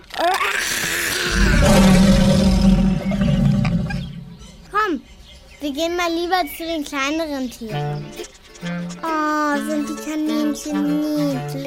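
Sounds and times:
lion roaring with a deep rumbling bellow: 0:01.0 - 0:04.6
speech: 0:05.8 - 0:11.6.

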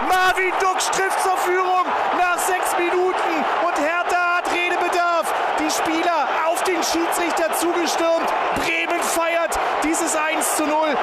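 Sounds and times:
stadium crowd of about 20,000 cheering after a goal: 0:00.0 - 0:11.0
speech: 0:00.5 - 0:01.7.

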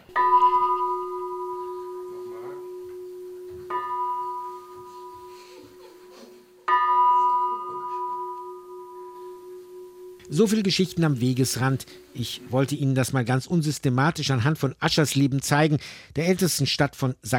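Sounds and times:
small church bell ringing in Aschersleben Saxony-Anhalt: 0:00.0 - 0:12.3
faint noise: 0:00.0 - 0:17.3
speech: 0:10.4 - 0:17.3.

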